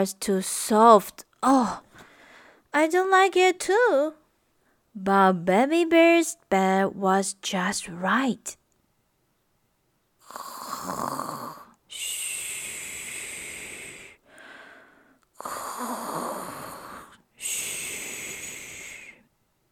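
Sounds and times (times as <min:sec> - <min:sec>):
speech: 0:00.0 - 0:01.9, 0:02.7 - 0:04.2, 0:05.0 - 0:08.6, 0:10.3 - 0:12.2
child snoring while asleep: 0:10.2 - 0:14.2, 0:15.4 - 0:19.3.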